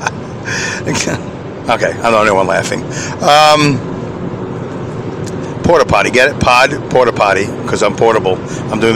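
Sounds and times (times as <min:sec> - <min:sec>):
road noise inside a moving car on a highway: 0:00.0 - 0:08.9
speech: 0:00.8 - 0:04.0, 0:05.7 - 0:08.9.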